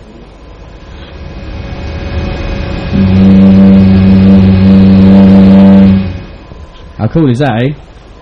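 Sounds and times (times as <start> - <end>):
engine roaring with a droning hum: 0.6 - 6.9
speech: 7.1 - 7.9.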